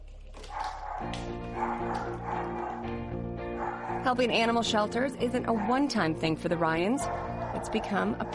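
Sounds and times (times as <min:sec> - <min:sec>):
dog barking: 0:00.5 - 0:02.9, 0:03.6 - 0:04.2, 0:05.4 - 0:08.3
speech: 0:04.0 - 0:08.3.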